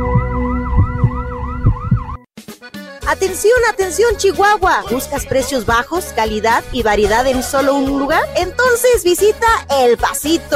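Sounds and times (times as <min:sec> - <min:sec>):
ambulance siren yelping: 0:00.0 - 0:02.3
speech: 0:03.1 - 0:10.5.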